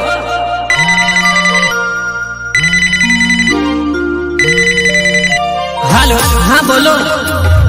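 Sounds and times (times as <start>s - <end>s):
melodic phone ringtone while a call is being placed: 0.0s - 7.6s.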